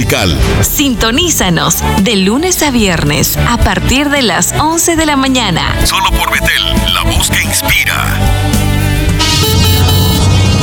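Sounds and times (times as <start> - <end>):
speech: 0.0 - 8.6
heavy road traffic: 8.2 - 10.6.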